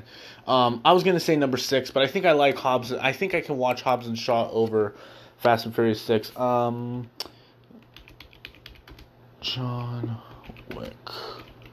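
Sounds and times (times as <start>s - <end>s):
speech: 0.5s - 7.3s, 9.4s - 11.4s
computer keyboard typing: 7.8s - 11.7s.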